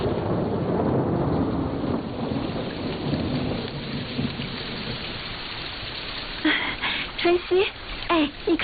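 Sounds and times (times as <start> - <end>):
low rolling thunder: 0.0 - 6.9
rain falling on roof eaves: 0.0 - 8.6
speech: 7.3 - 8.6.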